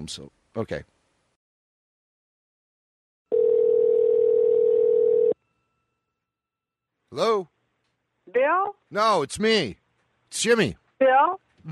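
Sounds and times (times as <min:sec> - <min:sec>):
speech: 0:00.0 - 0:01.0, 0:07.1 - 0:07.5, 0:08.3 - 0:11.7
telephone dial tone: 0:03.3 - 0:05.4.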